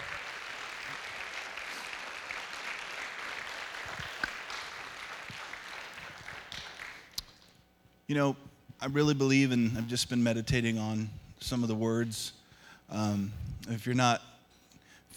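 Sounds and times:
audience applause at a church service: 0:00.0 - 0:07.2
speech: 0:08.1 - 0:14.3.

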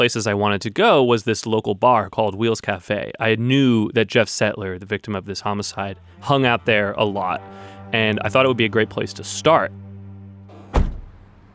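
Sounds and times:
speech: 0:00.0 - 0:09.8
low idling hum: 0:05.4 - 0:11.5
car door clunk as someone steps out of a car at a local bar: 0:10.5 - 0:11.4.

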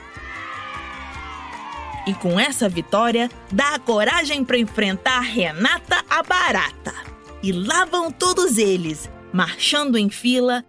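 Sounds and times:
chorus of high excited squeals and joyful shouts from many little insects: 0:00.0 - 0:02.1
speech: 0:02.1 - 0:10.6.

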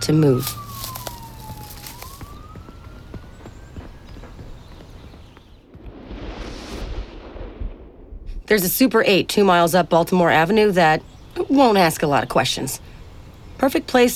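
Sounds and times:
speech: 0:00.0 - 0:00.6, 0:08.5 - 0:12.9, 0:13.6 - 0:14.1
police car siren wailing: 0:00.0 - 0:04.6.

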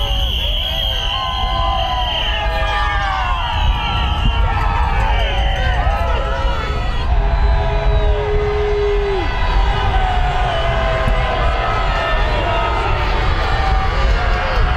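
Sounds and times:
whistle-like tones over a crowd: 0:00.0 - 0:06.1
roadside crowd of critics cheering: 0:00.0 - 0:14.7.

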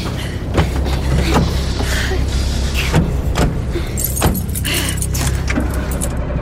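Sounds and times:
low car engine rumble: 0:00.0 - 0:06.4
keys jangling: 0:03.8 - 0:06.2.

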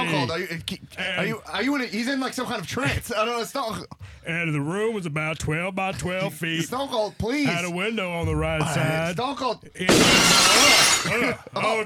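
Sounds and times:
speech: 0:00.2 - 0:11.8
glass shattering: 0:09.9 - 0:11.3.

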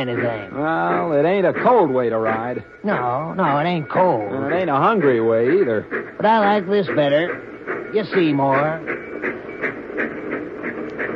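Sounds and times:
speech: 0:00.0 - 0:09.0
rhythmic rail clatter of a passing streamliner train: 0:00.0 - 0:11.1
streamliner train passing: 0:00.0 - 0:11.1.

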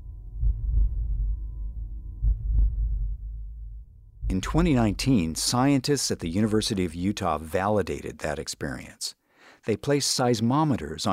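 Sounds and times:
deep heartbeat-like booming pulses: 0:00.0 - 0:06.7
low rumble: 0:00.0 - 0:07.0
speech: 0:04.3 - 0:11.1.

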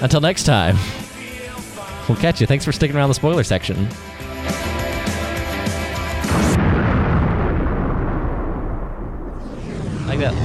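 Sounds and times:
speech: 0:00.0 - 0:01.0, 0:02.1 - 0:04.7, 0:10.2 - 0:10.4
music with a steady rhythmic beat: 0:00.7 - 0:02.4, 0:03.9 - 0:06.6
loud rumbling explosion: 0:06.2 - 0:10.4.

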